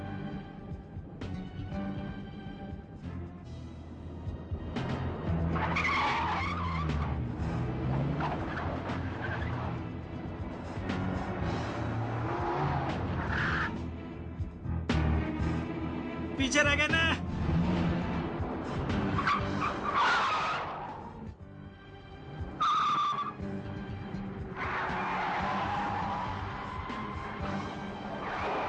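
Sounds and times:
car engine roaring: 0.0s - 16.4s, 17.2s - 28.6s
car tires skidding and squealing across pavement: 4.8s - 13.9s, 17.3s - 21.4s, 22.2s - 28.6s
speech: 16.5s - 17.2s.

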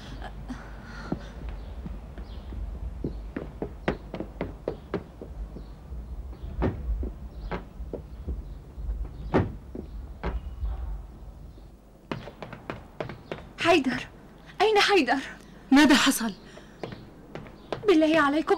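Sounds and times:
heavy door thuds: 2.3s - 13.6s
speech: 13.7s - 14.1s, 14.8s - 16.4s, 17.9s - 18.5s.

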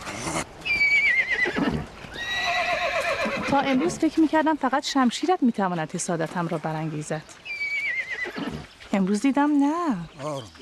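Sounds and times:
young horse whinnying: 0.0s - 4.0s, 7.4s - 8.7s
speech: 3.5s - 7.5s, 9.0s - 10.6s.

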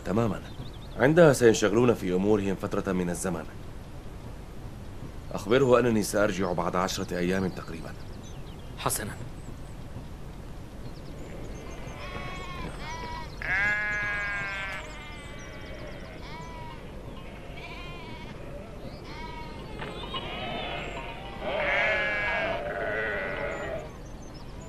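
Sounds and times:
speech: 0.1s - 3.6s, 5.3s - 8.1s, 8.8s - 9.4s
murmur of farmyard noise: 11.2s - 24.6s
several sheep bleating with wavering cries: 11.6s - 23.9s.

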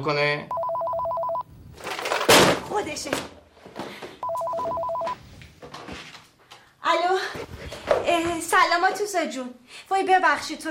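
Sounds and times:
speech: 0.0s - 0.6s, 2.7s - 3.4s, 6.9s - 10.6s
telephone ringing with rapid trilling pulsed tones: 0.5s - 1.5s, 4.2s - 5.2s.

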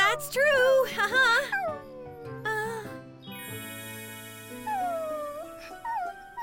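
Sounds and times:
puppy whimpering and howling: 0.0s - 2.9s, 4.5s - 6.4s.

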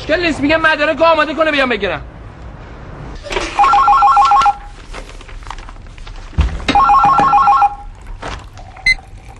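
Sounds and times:
speech: 0.1s - 2.1s
telephone ringing on an outgoing call: 3.3s - 4.7s, 6.7s - 7.9s.

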